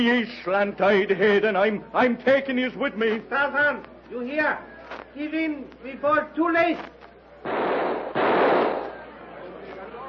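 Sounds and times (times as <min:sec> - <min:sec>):
speech: 0:00.0 - 0:07.6
rifle firing its last cartridges: 0:07.4 - 0:09.0.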